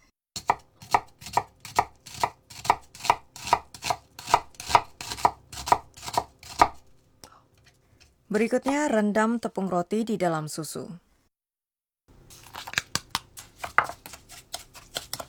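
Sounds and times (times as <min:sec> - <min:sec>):
knife finely mincing a halved onion on a cutting surface: 0:00.4 - 0:07.0, 0:12.4 - 0:15.2
speech: 0:08.3 - 0:11.1.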